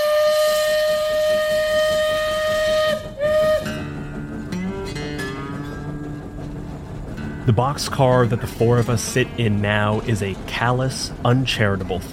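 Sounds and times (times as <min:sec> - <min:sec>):
loud steam train whistle blowing: 0:00.0 - 0:04.0
rhythmic chuffing and rumble of a moving steam train: 0:00.0 - 0:12.1
speech: 0:07.5 - 0:12.1.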